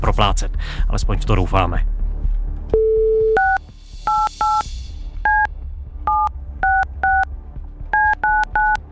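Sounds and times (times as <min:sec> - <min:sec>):
speech: 0:00.0 - 0:02.0
telephone number dialed with touch-tone DTMF beeps: 0:02.8 - 0:04.6, 0:05.3 - 0:05.5, 0:06.1 - 0:07.3, 0:08.0 - 0:08.8.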